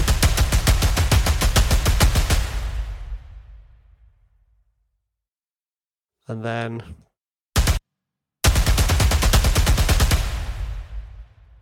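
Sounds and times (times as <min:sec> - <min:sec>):
machine gun sound effect firing: 0:00.0 - 0:03.3, 0:07.6 - 0:07.8, 0:08.4 - 0:11.2
speech: 0:06.3 - 0:07.1.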